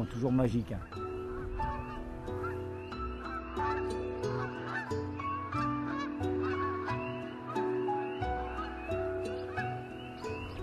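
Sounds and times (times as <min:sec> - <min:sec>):
speech: 0:00.0 - 0:01.0
flock of migrating geese from Norway and Sweden honking in flight: 0:00.7 - 0:10.6.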